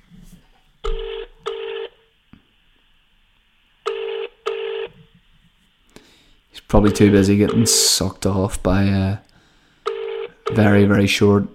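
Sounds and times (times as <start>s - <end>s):
faint hum: 0.0s - 11.5s
phone ringing tone from an outgoing call: 0.9s - 2.0s, 3.9s - 5.0s, 9.9s - 10.7s
speech: 6.7s - 9.3s, 10.5s - 11.5s.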